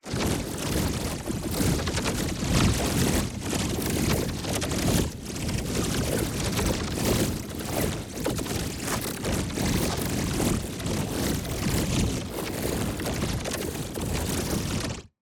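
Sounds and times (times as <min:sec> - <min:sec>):
ability charge rubber swarm effect: 0:00.1 - 0:15.0.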